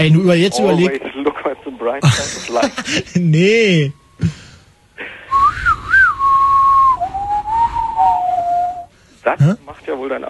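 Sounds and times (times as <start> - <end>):
speech: 0.0 - 1.1, 1.8 - 4.4, 9.2 - 10.2
person whistling a tune at a railway station: 5.3 - 8.9.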